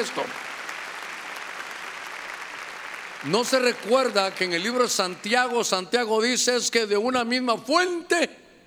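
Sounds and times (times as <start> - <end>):
speech: 0.0 - 0.5, 3.2 - 8.4
audience applauding loudly: 0.0 - 5.8.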